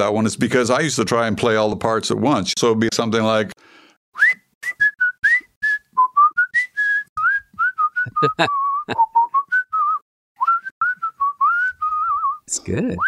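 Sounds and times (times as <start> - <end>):
speech: 0.0 - 4.3, 8.2 - 9.1, 12.7 - 13.0
person whistling a bouncy jaunty song tune: 4.2 - 13.0.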